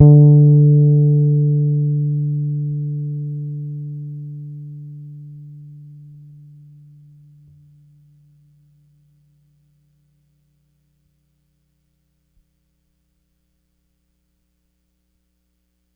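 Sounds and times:
Pedulla Thunderbass bass guitar playing D4 hard: 0:00.0 - 0:07.4.

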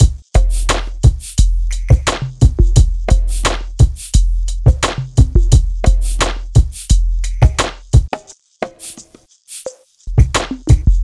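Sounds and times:
hip hop drums: 0:00.0 - 0:11.0.

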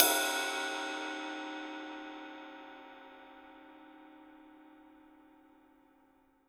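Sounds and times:
cymbal of a real rock drum kit: 0:00.0 - 0:02.5.

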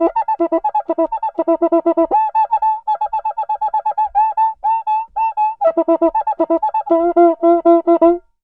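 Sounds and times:
cuica samba rhythm at 120 bpm: 0:00.0 - 0:08.2.

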